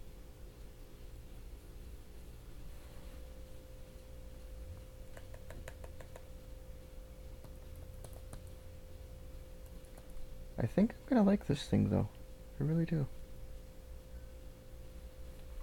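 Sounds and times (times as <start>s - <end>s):
steady low electrical hum: 0.0s - 15.6s
typing on a laptop keyboard: 5.1s - 6.3s, 7.4s - 8.6s
speech: 10.6s - 13.2s.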